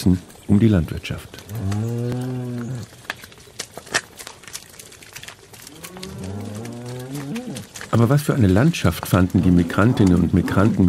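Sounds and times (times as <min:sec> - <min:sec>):
speech: 0:00.0 - 0:02.2, 0:08.0 - 0:10.8
rustling: 0:00.0 - 0:10.8
scattered clicks: 0:01.3 - 0:10.8
cow mooing with a long low call: 0:01.5 - 0:02.9, 0:05.7 - 0:07.8, 0:09.3 - 0:10.8.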